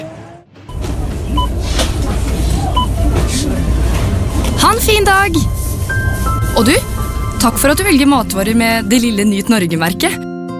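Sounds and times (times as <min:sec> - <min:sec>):
bus engine drone: 0:00.0 - 0:09.7
speech: 0:04.6 - 0:05.6, 0:06.6 - 0:10.2.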